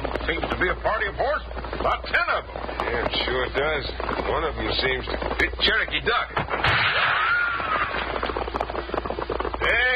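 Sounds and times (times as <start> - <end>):
short crackling bursts: 0.0 - 9.9
speech: 0.3 - 7.1, 9.6 - 9.9
gunshot: 6.4 - 8.1.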